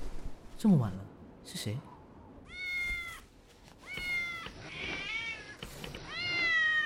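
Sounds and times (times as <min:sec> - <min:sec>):
speech: 0:00.6 - 0:01.9
agitated distressed cat meowing: 0:02.5 - 0:06.8.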